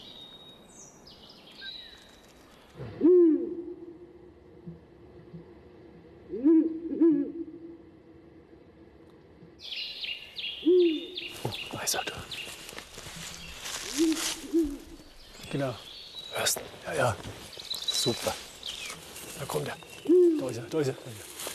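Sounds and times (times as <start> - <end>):
Ural owl calls played back from a sound lure device: 2.8 - 5.5, 6.3 - 7.8, 9.6 - 12.4, 13.3 - 15.2, 19.7 - 20.8
speech: 15.6 - 15.9, 18.0 - 18.5, 19.5 - 21.3.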